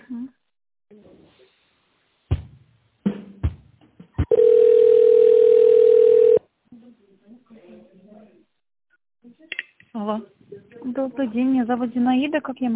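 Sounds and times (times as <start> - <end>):
steady single-pitch telephone tone during a call transfer: 4.3 - 6.4
speech: 11.1 - 12.7.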